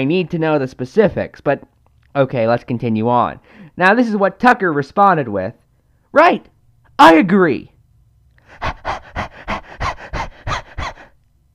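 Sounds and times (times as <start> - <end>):
speech: 0.0 - 7.7
person imitating dog panting: 8.4 - 11.2.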